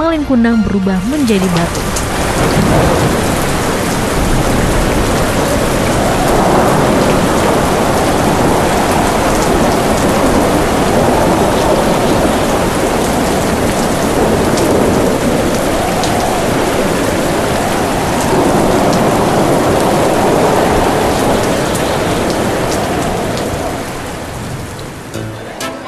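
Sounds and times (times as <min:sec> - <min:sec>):
heavy rain pouring: 0:00.0 - 0:25.8
speech: 0:00.2 - 0:03.3
deep rolling thunder: 0:01.0 - 0:25.1.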